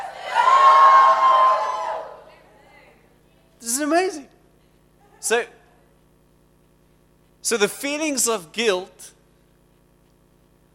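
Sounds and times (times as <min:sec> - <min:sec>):
crowd shouting and cheering: 0:00.0 - 0:02.6
speech: 0:05.3 - 0:05.6, 0:07.5 - 0:09.2.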